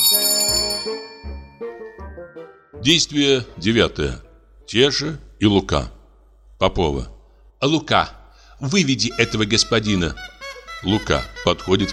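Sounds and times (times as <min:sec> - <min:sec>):
bell ringing: 0:00.0 - 0:02.6
speech: 0:02.8 - 0:06.0, 0:06.6 - 0:11.9.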